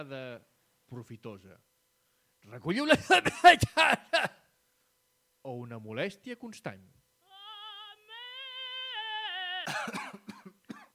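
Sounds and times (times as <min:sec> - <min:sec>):
speech: 0:00.0 - 0:01.7, 0:02.4 - 0:04.4, 0:05.4 - 0:07.0, 0:09.7 - 0:10.3
harsh coughing: 0:03.0 - 0:04.4, 0:09.6 - 0:10.9
person singing a long wavering note: 0:07.3 - 0:09.8.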